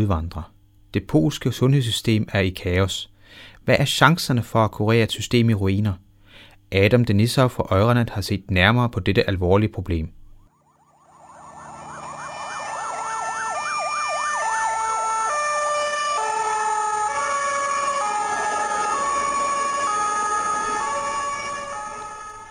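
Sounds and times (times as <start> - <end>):
speech: 0.0 - 6.0, 6.7 - 10.2
ambulance siren wailing: 10.4 - 22.4
faint road traffic: 10.9 - 22.4.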